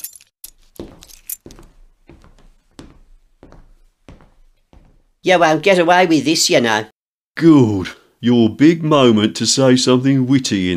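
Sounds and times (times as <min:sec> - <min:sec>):
keys jangling as they are handed over: 0:00.0 - 0:01.8
speech: 0:05.2 - 0:10.7.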